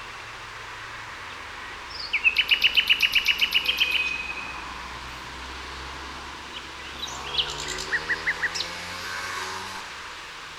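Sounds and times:
common nightingale Luscinia megarhynchos song: 0:01.2 - 0:04.8, 0:06.5 - 0:09.0.

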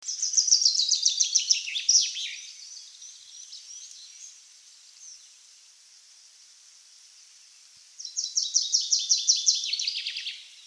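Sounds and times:
Common chaffinch song, Fringilla coelebs: 0:00.0 - 0:05.4, 0:08.0 - 0:10.6.

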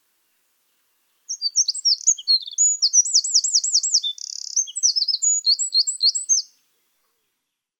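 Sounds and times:
Eurasian wren singing: 0:01.3 - 0:06.6.

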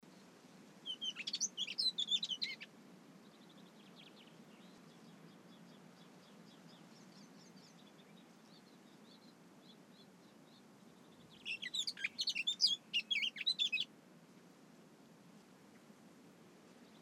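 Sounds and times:
Eurasian blackcap Sylvia atricapilla singing: 0:00.9 - 0:02.7, 0:11.3 - 0:13.9.

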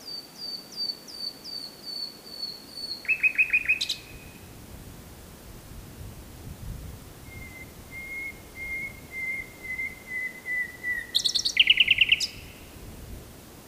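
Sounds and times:
Common nightingale Luscinia megarhynchos song: 0:00.0 - 0:04.4, 0:07.3 - 0:12.7.

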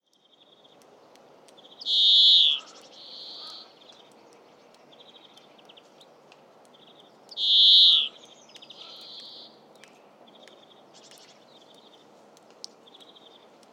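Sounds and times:
European greenfinch Chloris chloris softer buzzy twitters: 0:01.9 - 0:03.6, 0:07.4 - 0:08.2.

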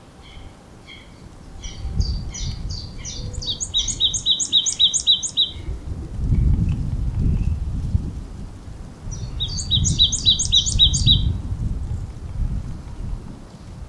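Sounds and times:
low rumbling background noise: 0:00.0 - 0:04.5, 0:05.3 - 0:13.8
marsh tit Poecile palustris rapid high doubled chattering notes: 0:00.2 - 0:05.6, 0:09.2 - 0:11.3.

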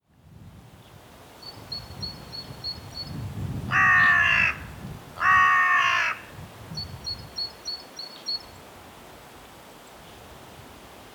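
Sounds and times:
carrion crow Corvus corone giving hoarse caws: 0:03.7 - 0:06.3.

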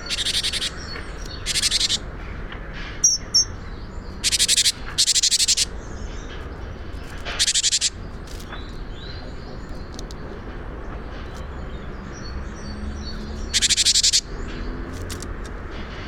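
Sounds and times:
great tit Parus major giving harsh pulsed churrs: 0:00.0 - 0:02.0, 0:04.2 - 0:05.7, 0:13.5 - 0:14.2
steady background noise: 0:00.0 - 0:16.0.

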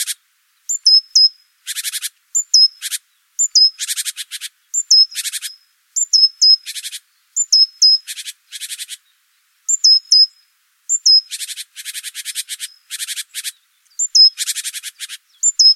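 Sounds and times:
great tit Parus major singing thin falling notes and churrs: 0:00.6 - 0:01.4, 0:02.3 - 0:15.7.

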